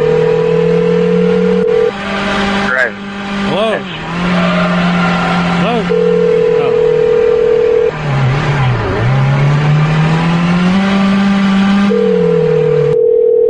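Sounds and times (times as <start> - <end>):
steady telephone tone from a phone call being placed: 0.0 - 1.9, 5.9 - 7.9, 11.9 - 13.4
loud car engine revving: 0.0 - 13.0.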